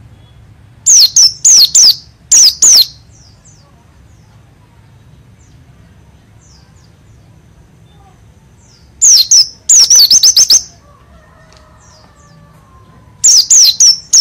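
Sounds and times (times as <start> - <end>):
white-eye song with sliding whistles and rolling trill: 0.1 - 3.4, 8.6 - 10.8, 13.2 - 14.1.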